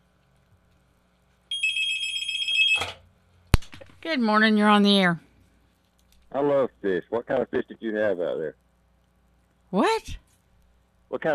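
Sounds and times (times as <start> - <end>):
telephone ringing with a fast trilling electronic warble: 1.5 - 3.0
speech: 4.1 - 5.2, 6.3 - 8.6, 9.7 - 10.2, 11.1 - 11.3.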